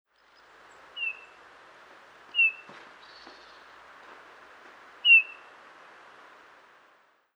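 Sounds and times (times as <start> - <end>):
steady background noise: 0.1 - 7.3
Eurasian bullfinch Pyrrhula pyrrhula soft whistled calls: 1.0 - 1.4, 2.3 - 3.6, 5.0 - 5.5.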